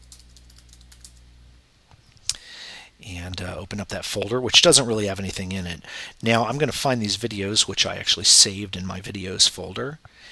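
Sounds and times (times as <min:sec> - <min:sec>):
typing a password on a computer keyboard: 0:00.0 - 0:01.2
speech: 0:03.0 - 0:10.2.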